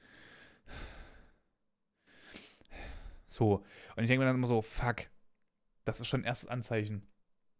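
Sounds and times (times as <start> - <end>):
person breathing heavily and laboriously: 0.0 - 1.4, 2.0 - 4.0
speech: 3.3 - 5.2, 5.8 - 7.1.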